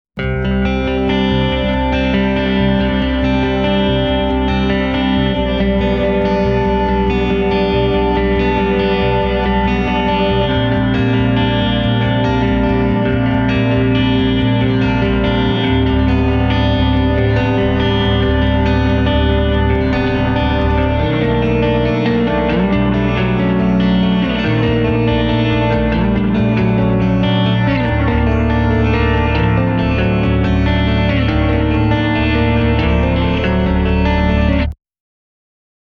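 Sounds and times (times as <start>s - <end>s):
bass: 0.0s - 34.8s
dark descending guitar riff: 0.2s - 34.8s.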